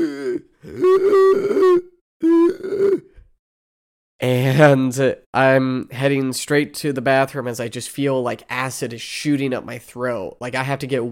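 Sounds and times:
person imitating gasping and struggling for breath: 0.0s - 3.3s
speech: 4.2s - 11.1s.

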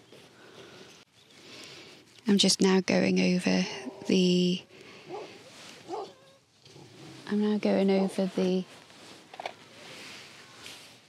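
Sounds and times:
faint outdoor noise: 0.0s - 11.0s
speech: 2.3s - 4.7s, 7.3s - 8.8s
large dog barking with deep woofs: 5.1s - 6.2s.

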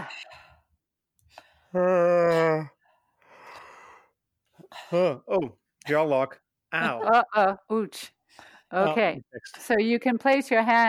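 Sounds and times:
speech: 1.7s - 2.7s, 4.9s - 10.8s
person yawning: 1.8s - 2.7s.

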